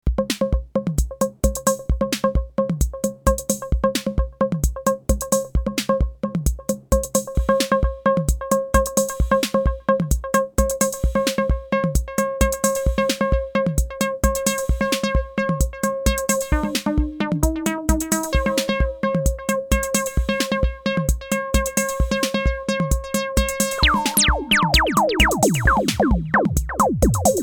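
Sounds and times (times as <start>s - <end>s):
TR-606 drum machine: 0.0s - 27.4s
Micromoog synthesizer: 16.2s - 21.1s, 23.5s - 27.4s.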